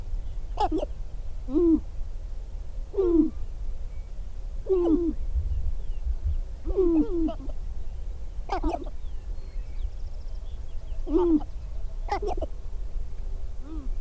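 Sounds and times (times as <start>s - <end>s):
sharp-tailed grouse cackling: 0.0s - 1.9s, 4.6s - 5.2s, 6.6s - 7.7s, 8.4s - 9.2s, 10.7s - 12.7s
sharp-tailed grouse low hooting coos: 0.0s - 2.0s, 2.9s - 3.5s, 4.6s - 5.3s, 6.6s - 7.7s, 8.4s - 9.2s, 10.8s - 12.7s, 13.6s - 13.9s
low steady background rumble: 0.0s - 13.9s.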